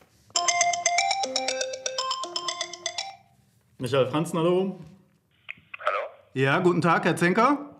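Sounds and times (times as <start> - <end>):
telephone ringtone electronic melody: 0.4 - 3.4
speech: 3.8 - 5.0, 6.3 - 7.7.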